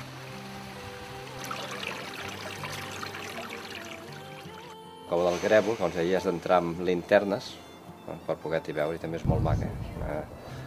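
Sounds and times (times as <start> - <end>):
river flowing with rushing gurgling water: 0.0 - 4.8
splashy trickles of water: 0.0 - 4.8
speech: 5.1 - 10.4.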